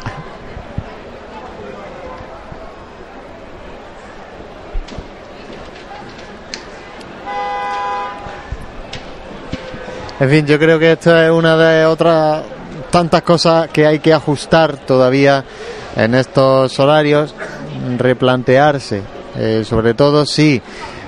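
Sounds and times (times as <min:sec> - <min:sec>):
crowd murmur: 0:00.0 - 0:21.0
street noise: 0:00.0 - 0:21.0
car horn blaring from impatient drivers held up by a religious brotherhood procession: 0:07.2 - 0:08.6
speech: 0:10.2 - 0:20.9.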